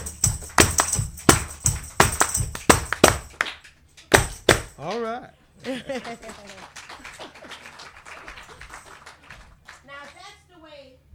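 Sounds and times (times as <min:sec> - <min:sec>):
audience clapping hands in rhythm: 0:00.0 - 0:10.4
speech: 0:04.8 - 0:06.8
laughter: 0:05.4 - 0:09.5.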